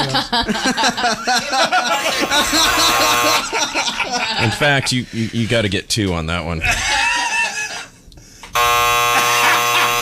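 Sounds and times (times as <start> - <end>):
laughter: 0.0 - 5.5, 6.6 - 8.0, 9.2 - 10.0
speech: 0.0 - 7.0
loud harsh double buzzer blasts: 2.4 - 3.6, 8.6 - 10.0.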